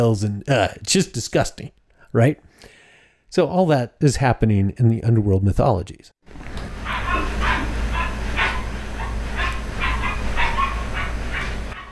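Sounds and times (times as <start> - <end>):
speech: 0.0 - 2.7, 3.3 - 6.6
dog barking: 6.8 - 11.9.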